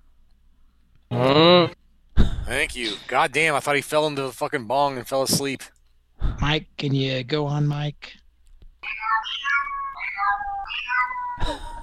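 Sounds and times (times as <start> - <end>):
speech: 2.6 - 8.2, 11.4 - 11.7
cat meowing in high wavering calls: 8.8 - 11.8.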